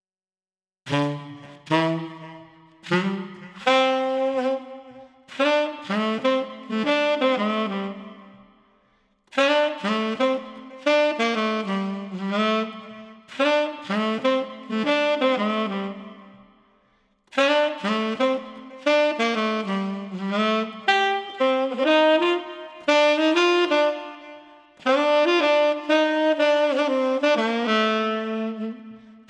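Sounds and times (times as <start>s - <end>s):
lively street saxophone playing: 0.9s - 8.6s, 9.3s - 16.6s, 17.3s - 29.2s.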